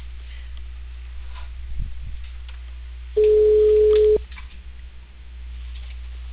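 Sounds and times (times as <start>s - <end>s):
faint telephone line hum: 0.0s - 6.3s
quiet low rumbles: 0.0s - 6.3s
telephone ringback tone: 3.2s - 4.2s.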